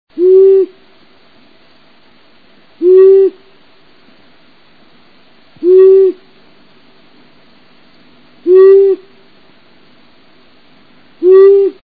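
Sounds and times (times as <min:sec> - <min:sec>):
Long-eared Owl calling: 0:00.2 - 0:00.8, 0:02.8 - 0:03.6, 0:05.6 - 0:06.3, 0:08.4 - 0:09.2, 0:11.2 - 0:11.8.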